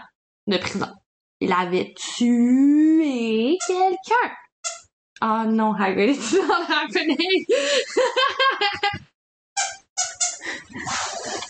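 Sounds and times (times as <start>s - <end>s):
speech: 0.5s - 4.4s, 5.2s - 9.0s
dog squeezing a cake-shaped squeaky toy: 3.6s - 4.9s, 9.6s - 11.4s
person laughing: 6.2s - 9.1s, 10.4s - 11.4s.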